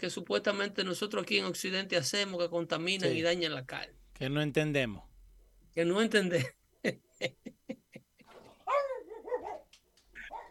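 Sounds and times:
speech: 0.0s - 5.1s, 5.8s - 7.8s
laughter: 6.4s - 8.6s
dog barking with a whiny tail: 8.7s - 10.4s.

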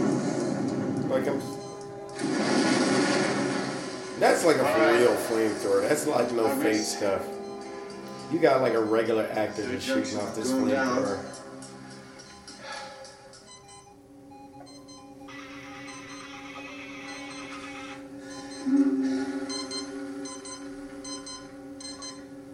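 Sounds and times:
low hum: 0.0s - 22.5s
speech: 1.2s - 1.6s, 4.4s - 7.4s, 8.3s - 11.4s
electronic alarm beeping in a film: 1.4s - 2.2s, 4.3s - 22.5s
burst of hissing noise: 2.2s - 6.3s.

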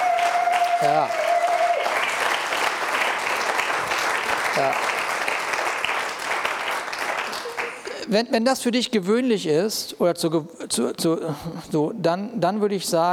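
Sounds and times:
large audience applause in a church: 0.0s - 8.1s
speech: 0.8s - 1.3s, 4.6s - 4.9s, 8.1s - 13.1s.

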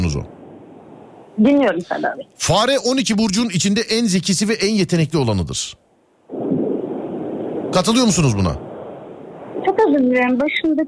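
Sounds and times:
speech: 1.4s - 5.9s, 7.7s - 8.6s, 9.7s - 10.8s
wind noise buffeting a phone caller's microphone: 6.3s - 10.8s.

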